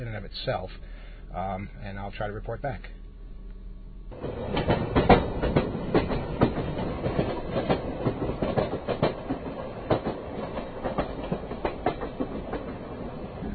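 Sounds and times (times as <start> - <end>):
speech: 0.0 - 3.0, 4.1 - 4.8
double-decker rush hour commuter train clattering on rails: 4.1 - 13.5.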